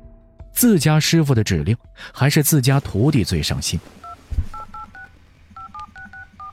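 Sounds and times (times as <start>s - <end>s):
speech: 0.6s - 4.1s
mobile phone keypad tones while dialing a number: 4.0s - 6.5s.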